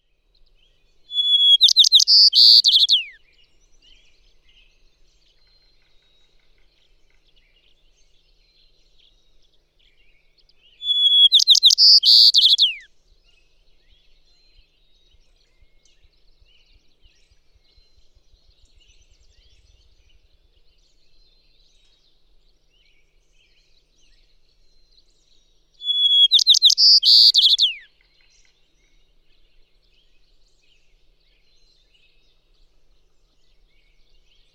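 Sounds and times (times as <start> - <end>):
White-crowned Sparrow calling: 1.1 - 3.2, 10.8 - 12.9, 25.8 - 27.9.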